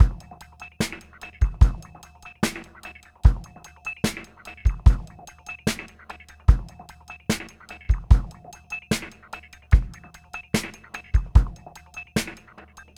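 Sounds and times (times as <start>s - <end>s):
funky bell: 0.0s - 12.9s.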